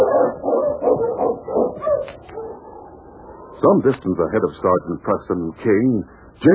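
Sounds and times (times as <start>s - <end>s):
team of husky sled dogs barking and yipping excitedly: 0.0s - 3.0s
speech: 3.6s - 6.5s.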